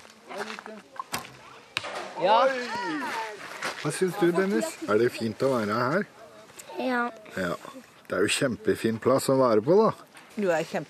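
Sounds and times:
speech: 0.7 - 1.1, 2.2 - 6.2, 6.8 - 10.8
arrows shot from a bow at a family holiday camp in Norway: 1.1 - 2.2.

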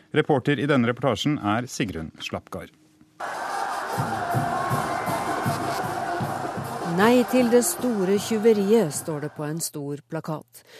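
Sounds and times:
speech: 0.1 - 3.4, 7.0 - 10.7
crowd at a protest rally cheering and shouting viva: 3.2 - 9.6.

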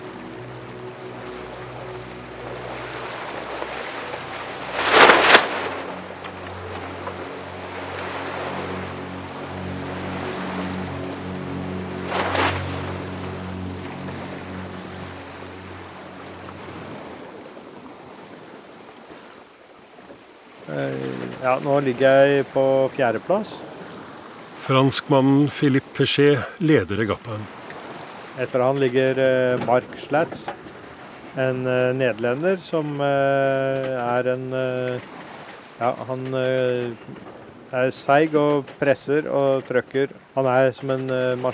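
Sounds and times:
low engine-like drone: 0.0 - 17.5, 20.7 - 23.2
sharp broadband splashes as the hull rolls: 0.0 - 41.5
wind and water washing around a sailboat rolling at sea: 0.0 - 41.5
speech: 20.8 - 23.8, 24.7 - 27.6, 28.4 - 30.7, 31.4 - 35.2, 35.8 - 41.5.

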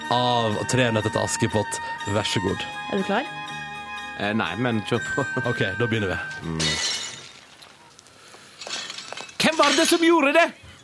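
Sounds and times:
speech: 0.1 - 3.5, 4.2 - 6.9, 9.8 - 10.6
plate fragments clinking: 6.1 - 10.4
cracked plate breaking: 6.2 - 7.9, 8.6 - 10.4.

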